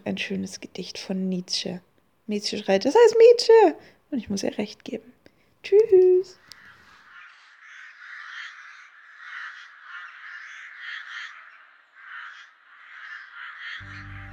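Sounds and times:
speech: 0.1s - 6.4s
crows cawing: 6.4s - 14.3s.

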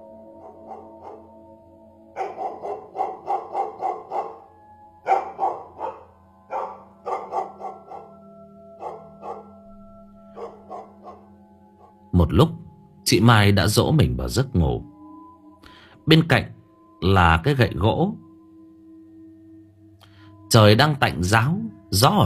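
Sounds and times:
village dog barking at night: 0.4s - 1.3s, 2.2s - 8.2s, 8.8s - 9.6s, 10.4s - 11.9s
speech: 12.2s - 14.9s, 16.1s - 18.2s, 20.5s - 22.2s.

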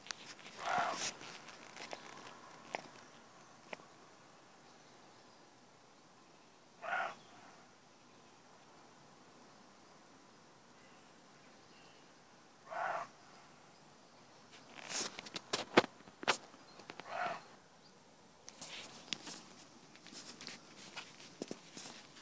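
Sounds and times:
rustling: 0.0s - 3.2s, 14.5s - 17.2s, 18.4s - 22.1s
young roe deer hoarse barks in a meadow in Corrèze, France: 0.6s - 1.1s, 6.8s - 7.6s, 12.6s - 13.1s, 17.0s - 17.5s.

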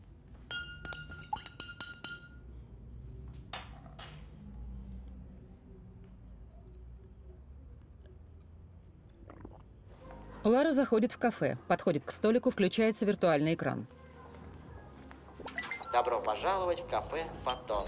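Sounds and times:
spoon clinking against a glass of water while stirring iodine drops: 0.5s - 2.4s
speech: 10.4s - 14.0s, 16.0s - 17.8s.

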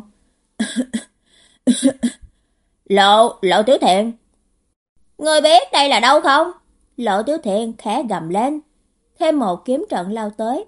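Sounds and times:
dry cough: 0.6s - 1.1s
speech: 1.6s - 2.1s, 2.9s - 4.2s, 5.2s - 10.6s.

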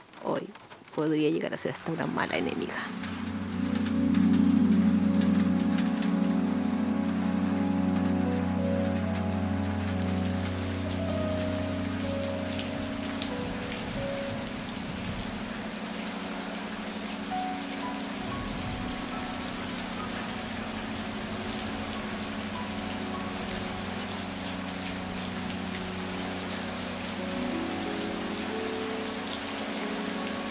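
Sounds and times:
rain falling on a surface: 0.0s - 30.4s
speech: 0.4s - 3.1s.

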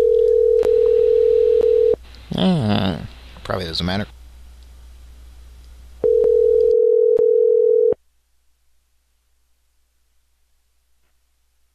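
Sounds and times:
telephone ringing tone while calling: 0.0s - 2.0s, 6.0s - 8.0s
speech: 2.4s - 2.7s, 3.6s - 4.1s.

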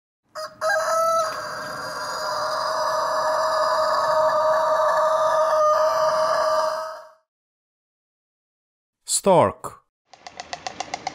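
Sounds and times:
rooster crowing: 0.3s - 7.2s
speech: 9.2s - 9.8s.

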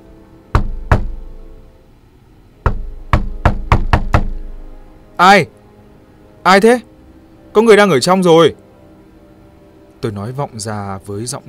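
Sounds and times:
sharp loud knocking on a door: 0.5s - 1.2s, 2.6s - 4.4s
speech: 5.2s - 5.6s, 6.4s - 6.9s, 7.6s - 8.6s, 10.0s - 11.4s.

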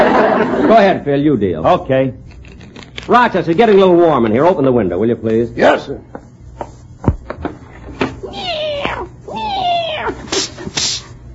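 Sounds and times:
laughter: 0.0s - 0.9s
speech: 0.7s - 2.3s, 3.1s - 6.2s
cat meowing angrily: 8.2s - 10.4s.

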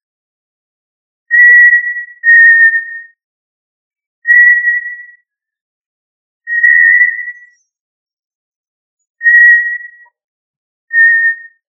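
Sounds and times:
quail whistles: 1.3s - 3.2s, 4.2s - 5.2s, 6.5s - 7.7s, 9.2s - 10.1s, 10.9s - 11.6s.

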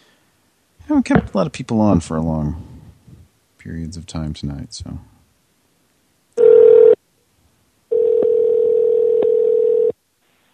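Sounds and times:
speech: 0.9s - 2.7s, 3.6s - 5.1s
recorded telephone ringing tone over a phone line: 6.4s - 7.0s, 7.9s - 10.0s.

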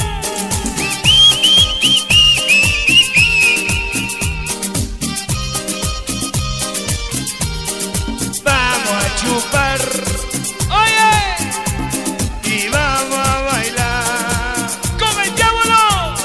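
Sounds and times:
loud rhythmic music in a DJ mix: 0.0s - 16.2s
people whistling a melody along to music: 0.4s - 4.8s.

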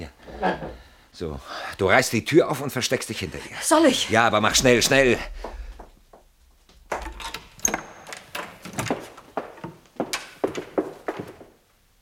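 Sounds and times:
speech: 0.0s - 5.6s
footsteps of someone rushing down a staircase: 4.5s - 11.6s.

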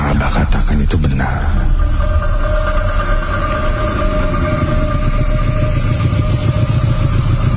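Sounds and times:
speech: 0.1s - 1.8s
motorcycle engine running as the rider arrives home and parks: 1.7s - 7.5s.

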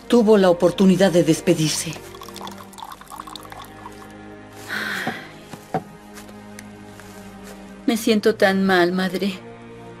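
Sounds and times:
speech: 0.1s - 2.1s, 7.9s - 9.5s
water pouring into two glasses: 1.7s - 4.2s.

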